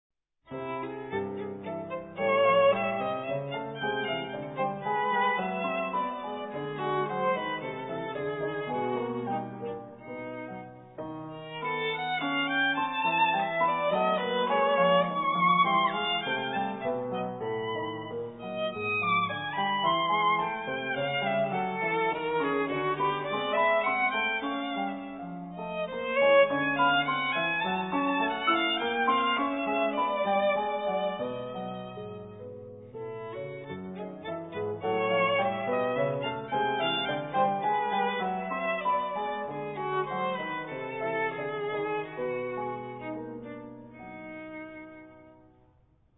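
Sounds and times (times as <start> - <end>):
violin: 0.5 - 45.8.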